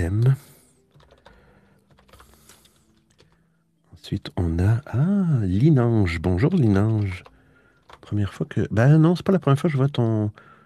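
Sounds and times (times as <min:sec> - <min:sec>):
speech: 0:00.0 - 0:00.5, 0:04.1 - 0:07.3, 0:08.1 - 0:10.5
fingers typing on a computer keyboard: 0:00.9 - 0:03.4, 0:06.1 - 0:08.4.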